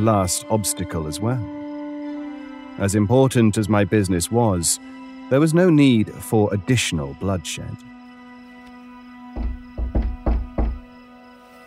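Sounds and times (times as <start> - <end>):
speech: 0.0 - 1.7, 2.8 - 8.0
firm rat-a-tat-tat knocking on door: 9.4 - 10.9.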